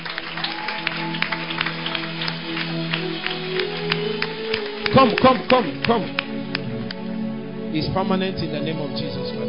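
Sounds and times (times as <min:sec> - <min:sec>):
large group clapping at a prayer gathering: 0:00.0 - 0:07.1
speech: 0:05.0 - 0:06.2, 0:07.7 - 0:09.3.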